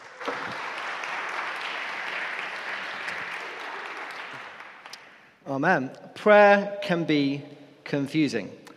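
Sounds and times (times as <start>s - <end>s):
audience applause welcoming a speaker: 0.0s - 5.2s
speech: 5.5s - 8.6s.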